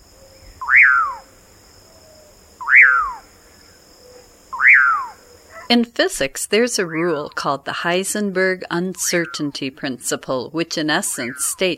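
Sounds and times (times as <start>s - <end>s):
Common Pauraque slurred whistled calls: 0.6s - 1.3s, 2.6s - 3.3s, 4.6s - 5.7s
speech: 5.7s - 11.7s.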